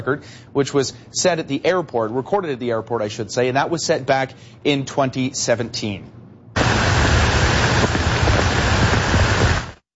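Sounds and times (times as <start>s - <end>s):
speech: 0.0s - 6.2s
heavy rain downpour during morning storms in July: 6.6s - 9.8s.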